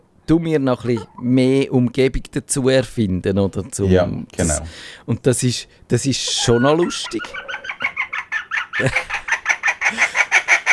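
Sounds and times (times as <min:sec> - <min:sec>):
speech: 0:00.3 - 0:07.5, 0:08.8 - 0:09.2
laughter: 0:06.3 - 0:10.4
chicken clucking: 0:06.3 - 0:10.7.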